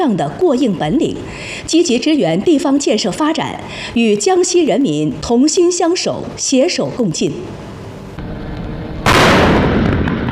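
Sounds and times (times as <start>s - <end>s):
speech: 0.0s - 7.8s
artillery blast from an army brigade's fire unit during a live-fire drill: 9.0s - 10.3s.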